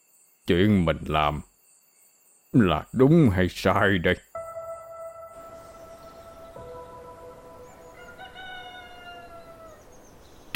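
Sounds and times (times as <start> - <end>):
speech: 0.5 - 1.5, 2.5 - 4.3
roosters crowing at dawn: 6.6 - 10.2.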